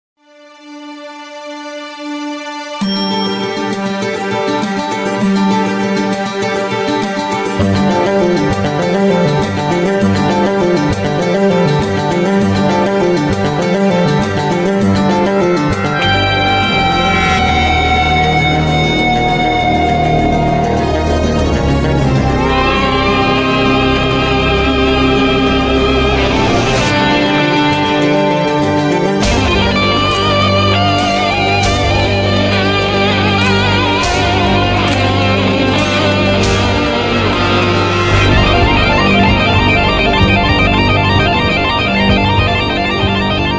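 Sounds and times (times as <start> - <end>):
guitar cover of theme music: 0.4 - 43.5.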